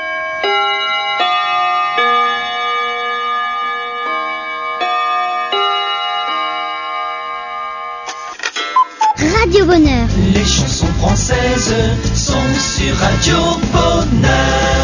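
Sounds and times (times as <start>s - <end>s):
carillon chimes marking noon playing a slow melody: 0.0s - 9.2s
speech: 9.7s - 14.7s.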